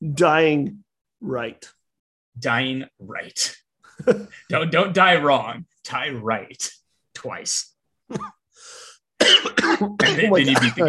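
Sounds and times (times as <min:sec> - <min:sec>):
speech: 0:00.0 - 0:01.8, 0:02.4 - 0:08.4, 0:09.2 - 0:10.8
person coughing: 0:08.1 - 0:08.4, 0:09.2 - 0:10.8
breathy wheezing: 0:08.5 - 0:09.1.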